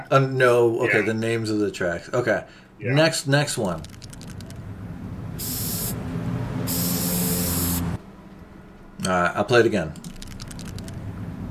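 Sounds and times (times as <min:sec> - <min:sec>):
speech: 0:00.0 - 0:04.1, 0:09.1 - 0:10.0
spray paint can hissing: 0:05.4 - 0:06.0, 0:06.6 - 0:08.0.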